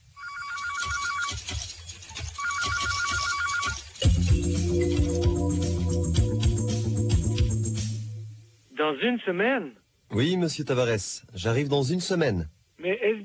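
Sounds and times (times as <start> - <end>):
telephone ringing in trilling bursts: 0.0 - 1.6, 2.2 - 5.9
music: 4.0 - 8.5
speech: 9.0 - 13.2.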